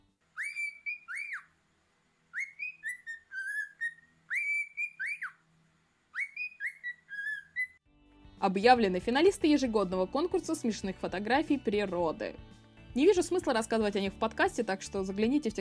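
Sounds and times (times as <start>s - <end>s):
cockatiel whistling a well-known tune: 0.3s - 1.5s, 2.3s - 5.4s, 6.1s - 7.8s
speech: 8.4s - 15.5s.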